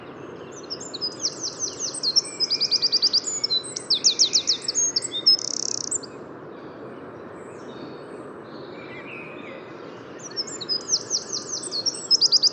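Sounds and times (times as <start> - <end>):
faint steady background noise: 0.0 - 12.5
Eurasian wren singing in the Bois de Vincennes in the morning: 0.5 - 6.2, 10.2 - 12.5.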